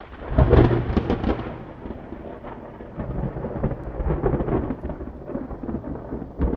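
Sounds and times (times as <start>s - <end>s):
thunder crack and rumble: 0.0s - 6.5s.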